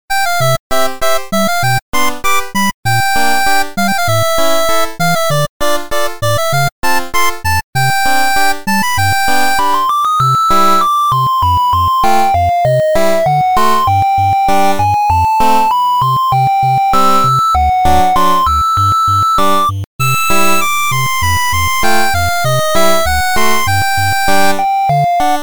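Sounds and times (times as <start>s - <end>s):
8-bit bustling street corner music loop: 0.1s - 25.4s.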